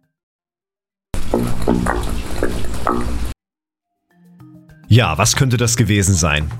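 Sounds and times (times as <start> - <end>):
water gurgling through a half-full trail drainage pipe: 1.2 - 3.4
speech: 5.0 - 6.5.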